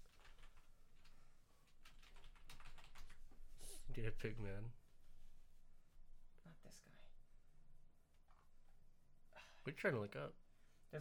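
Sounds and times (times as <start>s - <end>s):
quiet typing on a computer keyboard: 0.0s - 3.3s
speech: 4.0s - 4.8s, 9.6s - 10.9s.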